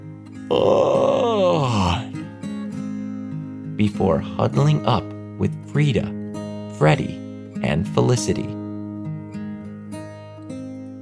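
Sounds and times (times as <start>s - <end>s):
soft steady music: 0.0s - 11.0s
speech: 0.5s - 0.9s, 3.8s - 6.2s, 6.8s - 8.6s
narrator performing a big yawn: 0.5s - 2.2s.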